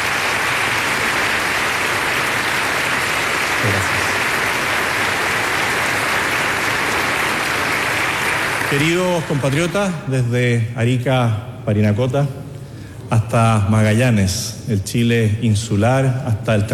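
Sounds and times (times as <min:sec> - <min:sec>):
large audience applauding: 0:00.0 - 0:09.9
speech: 0:08.7 - 0:12.4, 0:13.1 - 0:16.7.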